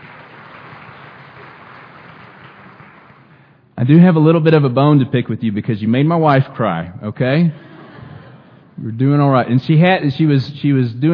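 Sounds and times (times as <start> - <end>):
audience applauding a choir: 0.0 - 3.5
speech: 3.8 - 7.7, 8.8 - 11.1
laughter: 7.6 - 8.8.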